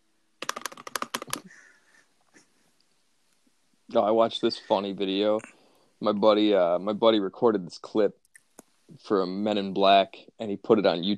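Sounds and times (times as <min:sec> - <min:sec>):
faint noise: 0:00.0 - 0:11.1
typing on a computer keyboard: 0:00.4 - 0:01.5
speech: 0:03.9 - 0:08.2, 0:08.9 - 0:11.1.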